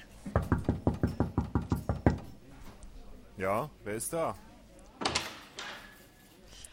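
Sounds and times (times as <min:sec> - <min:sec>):
person rapping on a door: 0:00.3 - 0:02.4
speech: 0:03.4 - 0:04.5.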